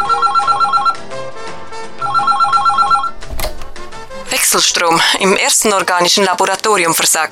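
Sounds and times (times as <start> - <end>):
telephone bell ringing: 0.0 - 1.0, 2.0 - 3.2
telephone receiver clatter: 3.2 - 4.4
speech: 4.5 - 7.3.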